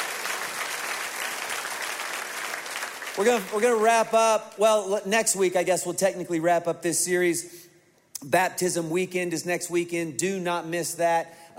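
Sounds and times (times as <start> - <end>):
large church audience applauding: 0.0 - 3.9
speech: 3.2 - 11.4.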